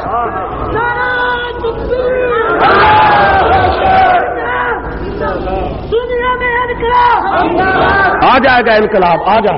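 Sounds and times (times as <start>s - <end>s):
crowd shouting: 0.0s - 5.5s, 6.1s - 9.5s
large crowd chanting religious slogans in unison: 0.0s - 5.6s, 6.7s - 8.4s
speech: 8.3s - 9.5s.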